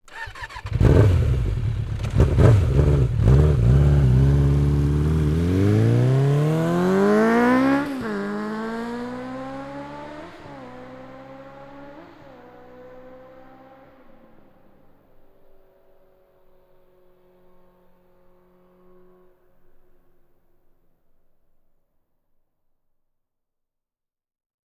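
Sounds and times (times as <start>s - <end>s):
motorcycle taking off: 0.1s - 13.8s.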